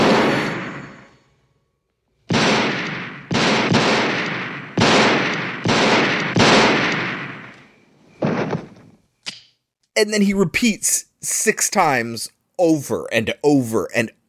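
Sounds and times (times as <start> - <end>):
loud gunshots with long decaying echo: 0.0 - 1.3, 2.2 - 8.8
speech: 10.0 - 14.2.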